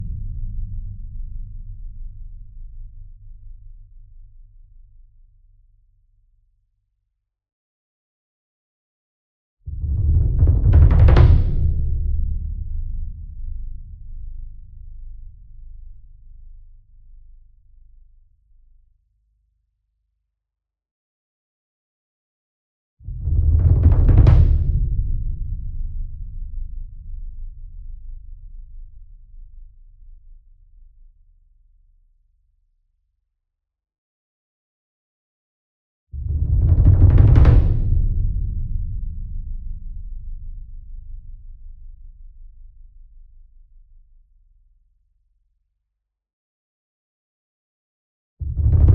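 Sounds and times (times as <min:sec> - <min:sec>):
40 inch concert bass drum roll with soft beater: 0:09.8 - 0:13.4, 0:23.2 - 0:26.3, 0:36.2 - 0:40.4, 0:48.5 - 0:48.9.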